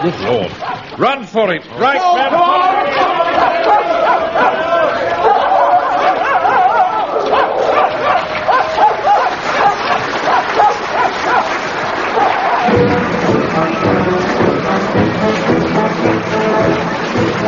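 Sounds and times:
speech: 0.0 - 3.6
indistinct voices: 0.0 - 10.4, 12.1 - 17.4
pack of dogs barking and yelping excitedly: 0.6 - 1.0, 3.0 - 12.8.

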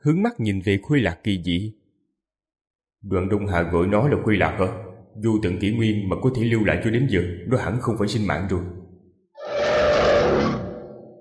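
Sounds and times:
speech: 0.0 - 1.8, 3.0 - 8.8
monster roar: 9.4 - 11.1.

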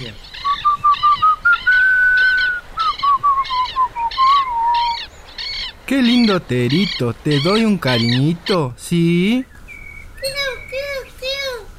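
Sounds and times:
boy whistling a tune: 0.4 - 4.9
speech: 5.9 - 9.5.

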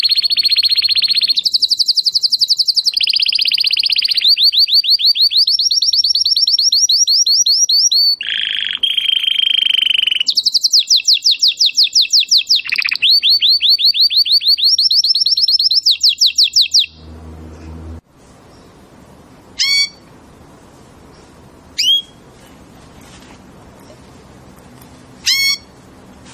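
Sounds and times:
Belgian domestic canary singing: 0.0 - 18.9, 19.6 - 20.1, 21.8 - 22.2, 25.2 - 25.8.

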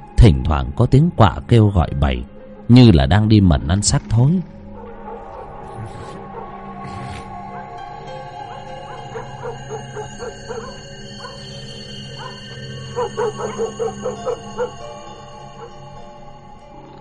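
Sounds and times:
speech: 0.2 - 4.6
steady low drone: 4.4 - 16.9
dogs barking at night: 4.6 - 16.0.

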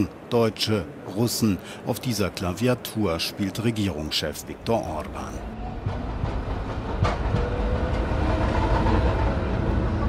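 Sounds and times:
speech: 0.0 - 6.4
tram passing by on a city street near a parliament building in Hungary: 2.0 - 10.0.

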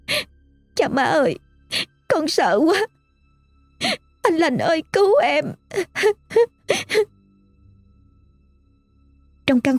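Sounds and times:
speech: 0.8 - 3.0, 3.8 - 7.2, 9.5 - 9.7
frightened woman sobbing weakly in a cold room: 5.6 - 7.1.

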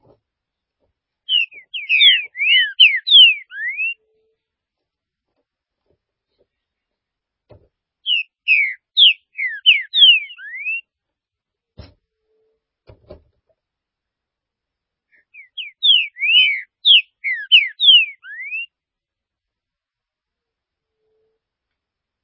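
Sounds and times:
Green-winged saltator singing whistled notes: 1.3 - 4.0, 8.0 - 10.9, 15.2 - 18.7
soft knocks: 7.5 - 7.8.

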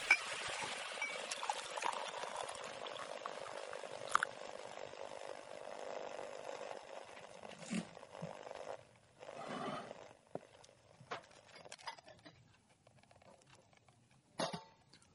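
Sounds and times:
girl pouring milk into a cup: 0.0 - 11.8.

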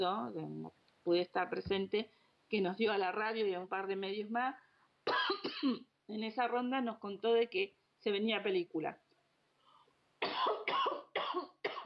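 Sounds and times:
speech: 0.0 - 4.6, 5.4 - 9.0
person coughing harshly: 5.1 - 5.9, 10.2 - 11.8.

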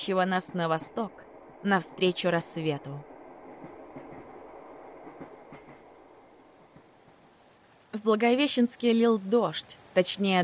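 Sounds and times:
speech: 0.0 - 3.1, 8.0 - 10.4
rumble of a moving train: 0.0 - 10.4
train wheels clacking over rail joints: 3.4 - 7.3.

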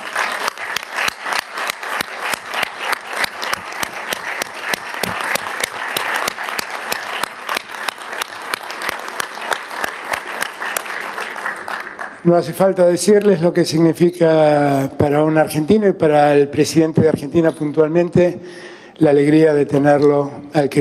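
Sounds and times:
audience applause at a regional summit: 0.0 - 12.3
speech: 12.2 - 20.8.

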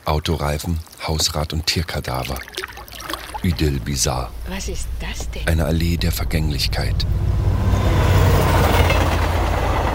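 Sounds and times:
speech: 0.1 - 2.8, 3.4 - 7.4
train on the Neisse valley railway crossing the river: 3.9 - 9.9.

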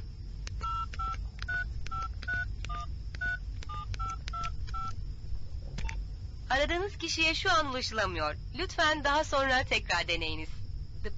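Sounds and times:
low steady hum: 0.0 - 11.1
touch-tone keypad beeps of a mobile phone being dialed: 0.6 - 4.9
speech: 6.5 - 11.1.

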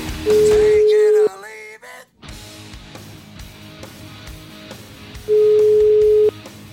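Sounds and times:
telephone ringback tone of an outgoing call: 0.3 - 1.3, 5.3 - 6.3.

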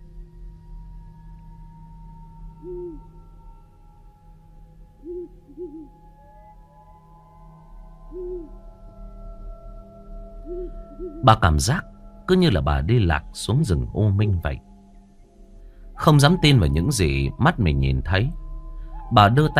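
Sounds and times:
owl hooting in a forest: 2.5 - 3.3, 5.0 - 6.6, 8.0 - 8.6, 10.4 - 11.9
speech: 11.2 - 14.7, 16.0 - 18.4, 19.1 - 19.5.

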